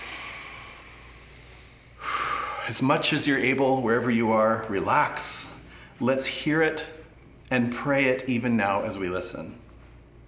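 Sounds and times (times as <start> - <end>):
slow deep breath: 0.0 - 2.7
speech: 2.7 - 9.6.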